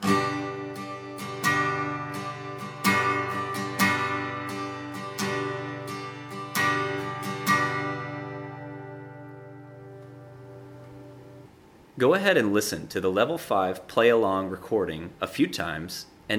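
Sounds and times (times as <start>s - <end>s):
advanced strumming pattern on a stringed instrument in a worship song: 0.0s - 11.4s
speech: 12.0s - 16.3s.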